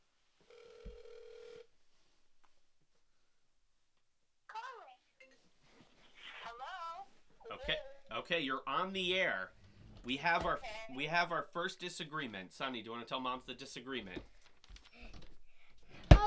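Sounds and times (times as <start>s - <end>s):
phone ringback tone heard through a phone line: 0.5s - 1.7s
voice on phone line: 6.2s - 8.6s, 10.4s - 11.3s
speech: 8.3s - 14.3s.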